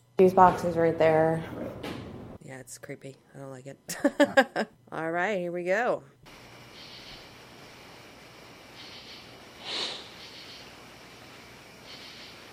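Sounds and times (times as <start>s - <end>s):
speech: 0.2s - 1.9s, 2.6s - 6.4s
steady hiss: 6.2s - 12.5s
person sniffling: 9.6s - 10.4s.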